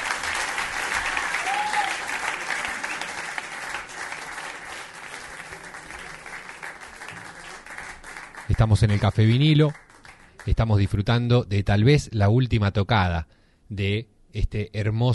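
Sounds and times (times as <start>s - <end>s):
audience applause at a jazz concert in a café: 0.0s - 10.5s
speech: 8.5s - 9.8s, 10.4s - 15.1s.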